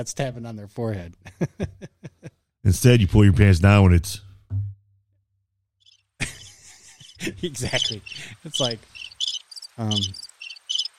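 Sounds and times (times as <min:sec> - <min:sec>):
speech: 0:00.0 - 0:02.0, 0:02.6 - 0:04.2, 0:07.2 - 0:08.9, 0:09.8 - 0:10.2
laughter: 0:01.2 - 0:02.3, 0:06.2 - 0:08.8
crickets chirping: 0:06.2 - 0:10.9.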